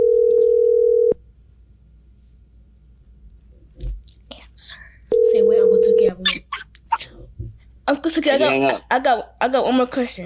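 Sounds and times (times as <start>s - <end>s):
telephone ringback tone while calling someone: 0.0s - 1.2s, 5.1s - 6.2s
speech: 7.9s - 10.2s.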